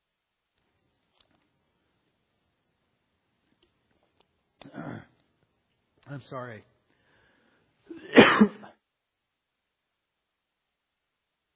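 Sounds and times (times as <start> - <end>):
coughing and throat clearing: 4.6 - 5.2, 7.9 - 8.8
speech: 6.1 - 6.8.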